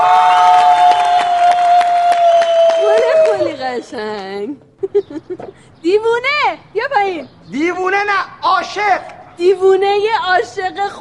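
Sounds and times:
crowd at a live performance cheering and shouting: 0:00.0 - 0:03.8
crowd at a live performance clapping: 0:00.0 - 0:04.3
sustained whistle tone from crowd: 0:02.1 - 0:03.1
speech: 0:03.9 - 0:10.9.

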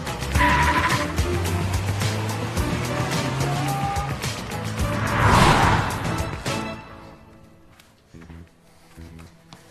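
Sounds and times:
race car tires squealing: 0:00.1 - 0:06.8
race car engine roaring and revving: 0:00.2 - 0:07.1.

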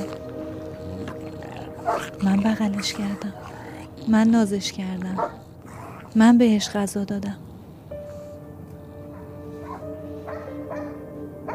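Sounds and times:
steady low droning hum: 0:00.0 - 0:11.4
speech: 0:01.9 - 0:05.5, 0:06.1 - 0:07.4
dog barking in short sharp bursts: 0:05.2 - 0:06.8, 0:09.1 - 0:11.5.

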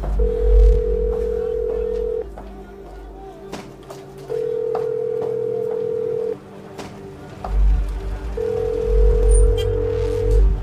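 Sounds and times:
mobile phone call ringback tones: 0:00.2 - 0:02.3, 0:04.3 - 0:06.4, 0:08.4 - 0:10.6.

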